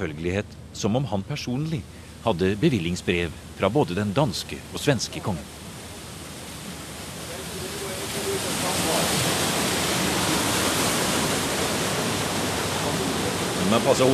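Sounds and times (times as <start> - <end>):
speech: 0.0 - 5.6, 13.7 - 14.1
water rushing through a water-powered sawmill sluice: 0.0 - 14.1.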